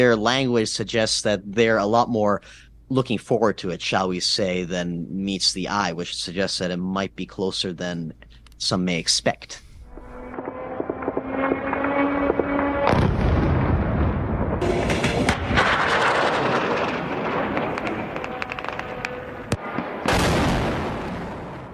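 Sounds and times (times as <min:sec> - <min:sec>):
speech: 0:00.0 - 0:09.6
droning engine buzz of a suicide drone: 0:09.8 - 0:15.2, 0:17.3 - 0:19.6
loud explosions in an urban setting: 0:10.0 - 0:21.7
sustained heavy gunfire in an urban setting: 0:12.4 - 0:21.7.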